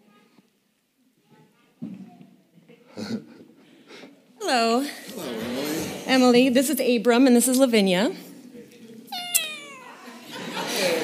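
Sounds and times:
speech: 0:03.1 - 0:03.3, 0:04.5 - 0:05.3, 0:06.1 - 0:08.2
cat meowing: 0:09.1 - 0:10.2
laughter: 0:09.9 - 0:11.0.

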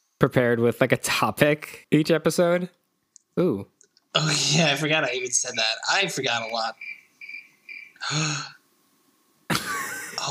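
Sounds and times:
speech: 0:00.2 - 0:02.8, 0:03.4 - 0:07.0, 0:08.0 - 0:08.6
crickets chirping: 0:04.2 - 0:08.6
breathy vocal gasp: 0:08.0 - 0:08.6.

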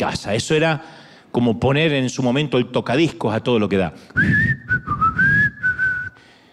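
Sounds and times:
speech: 0:00.0 - 0:05.0
father whistling a short melodic tune at home: 0:04.2 - 0:06.3.

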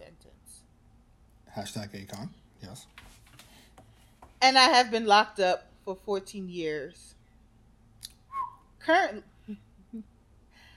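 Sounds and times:
faint noise: 0:00.0 - 0:10.7
soft low murmurs: 0:01.5 - 0:02.8
speech: 0:01.5 - 0:03.2, 0:04.4 - 0:07.2, 0:08.8 - 0:10.1
person whistling: 0:08.3 - 0:08.6.

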